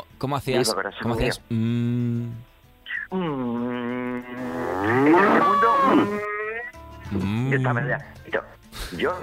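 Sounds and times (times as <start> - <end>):
speech: 0.2 - 2.5, 3.1 - 6.3, 7.1 - 9.2
man imitating a cow mooing: 3.1 - 7.6.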